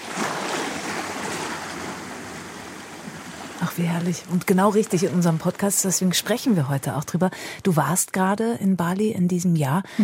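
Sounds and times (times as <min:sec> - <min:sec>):
ocean surf washing onto a shore in Bali: 0:00.0 - 0:06.5
speech: 0:03.6 - 0:10.0.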